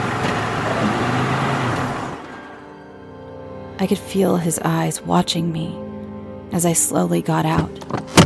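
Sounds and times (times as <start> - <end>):
car engine rumbling while pulling into a petrol station: 0.0 - 2.8
speech: 3.8 - 5.9, 6.5 - 8.2.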